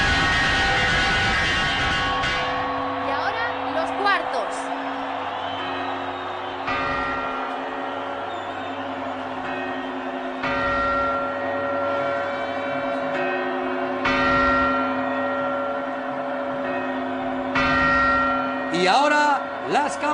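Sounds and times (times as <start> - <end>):
clock tower bell chiming: 0.0 - 20.1.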